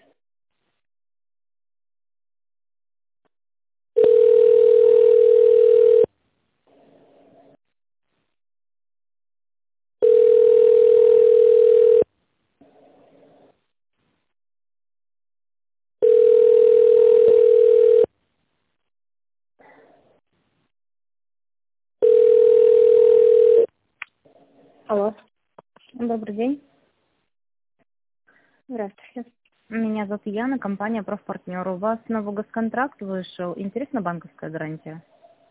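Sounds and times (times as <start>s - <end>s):
telephone ringback tone while a call is transferred: 4.0s - 6.1s, 10.0s - 12.1s, 16.0s - 18.1s, 22.0s - 23.7s
speech: 26.1s - 26.6s, 30.2s - 35.2s.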